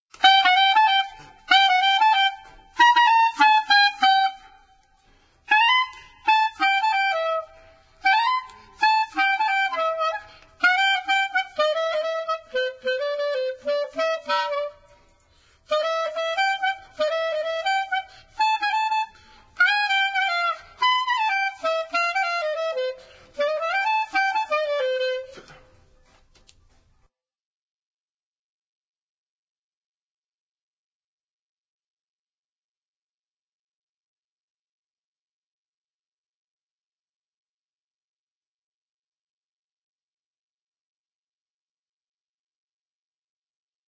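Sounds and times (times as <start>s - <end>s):
flute duet: 0.1s - 26.4s.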